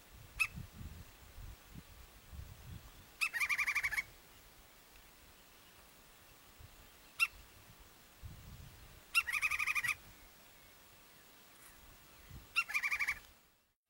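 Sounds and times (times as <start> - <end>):
woodpecker giving sharp note and chattering bursts: 3.2 - 4.1, 7.1 - 7.4, 9.1 - 10.1, 12.5 - 13.3.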